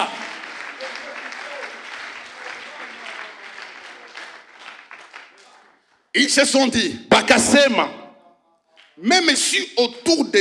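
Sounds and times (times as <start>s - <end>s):
audience voices cheering: 0.0s - 4.4s
audience applauding at a church worship service: 0.0s - 5.9s
speech: 6.2s - 8.0s, 9.0s - 10.3s.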